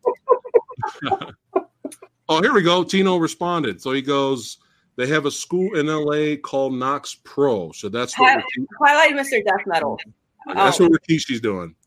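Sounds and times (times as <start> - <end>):
laughter: 0.0 - 1.6, 8.2 - 8.7, 10.6 - 11.1
person imitating a rooster clucking and crowing: 0.6 - 1.3, 8.2 - 8.7, 10.6 - 10.9
speech: 1.0 - 1.4, 2.3 - 11.8.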